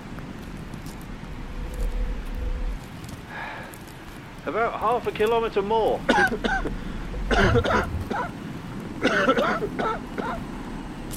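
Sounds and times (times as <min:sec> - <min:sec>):
steady low rumble: 0:00.0 - 0:11.1
speech: 0:04.4 - 0:08.4, 0:09.0 - 0:10.5
person coughing: 0:06.1 - 0:06.7, 0:07.3 - 0:08.3, 0:09.0 - 0:10.4
person clearing throat: 0:07.3 - 0:08.3, 0:09.0 - 0:10.4.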